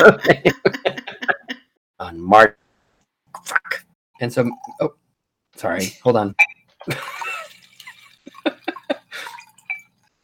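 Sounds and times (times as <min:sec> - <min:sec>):
speech: 0:00.0 - 0:00.8, 0:02.3 - 0:02.6, 0:03.4 - 0:05.0, 0:05.6 - 0:07.2
liquid pouring into a glass: 0:04.4 - 0:04.9, 0:07.0 - 0:10.1.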